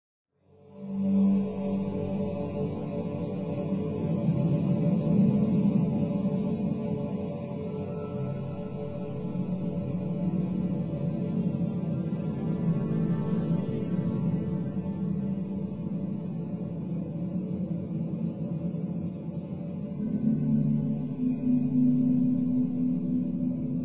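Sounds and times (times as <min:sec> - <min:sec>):
drone: 0:00.8 - 0:23.8.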